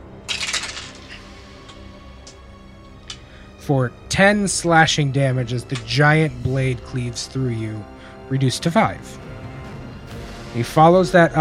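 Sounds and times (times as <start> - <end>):
damage dice rolled during a tabletop role-playing game: 0.3 - 1.8
speech: 3.7 - 9.2, 10.5 - 11.3.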